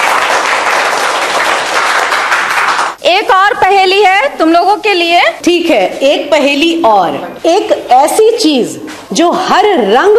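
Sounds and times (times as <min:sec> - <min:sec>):
group of children applauding: 0:00.0 - 0:03.0
speech: 0:03.1 - 0:10.1.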